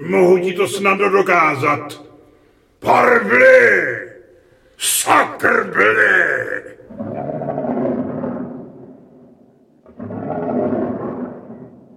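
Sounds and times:
speech: 0.0s - 2.1s, 2.8s - 4.1s, 4.8s - 7.4s
huge lion roaring: 6.8s - 11.9s.

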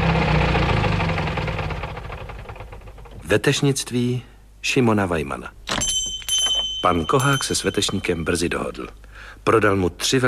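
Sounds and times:
car engine running then stopping: 0.0s - 3.2s
speech: 3.3s - 5.6s, 6.8s - 10.2s.

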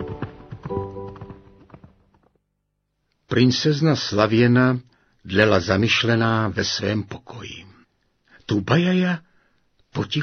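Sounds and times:
horse hooves clopping in a quick run: 0.0s - 2.4s
speech: 3.4s - 7.6s, 8.5s - 9.3s, 10.0s - 10.2s.

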